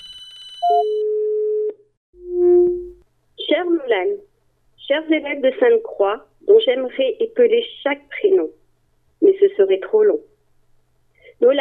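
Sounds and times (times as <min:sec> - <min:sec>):
electronic telephone line beeps: 0:00.0 - 0:03.0
speech: 0:03.9 - 0:04.3, 0:04.9 - 0:08.6, 0:09.2 - 0:10.3, 0:11.4 - 0:11.5.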